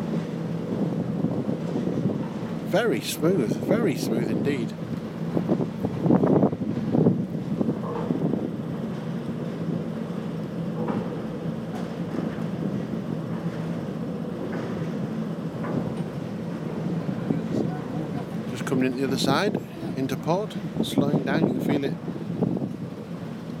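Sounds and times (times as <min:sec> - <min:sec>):
wheels rumbling overhead during a ride across a lake: 0:00.0 - 0:23.5
wind buffeting: 0:00.0 - 0:23.5
speech: 0:02.7 - 0:04.8, 0:19.0 - 0:22.2.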